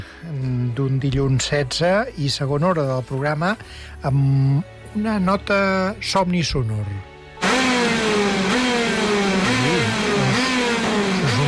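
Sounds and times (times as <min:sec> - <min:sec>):
speech: 0:00.2 - 0:07.1
go-kart engines revving: 0:07.4 - 0:11.4.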